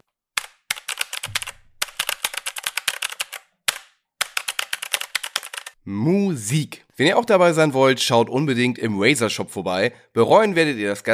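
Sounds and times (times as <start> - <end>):
typing on mechanical switches of a Razer BlackWidow V3 Pro keyboard: 0.4 - 5.8
speech: 5.8 - 11.1.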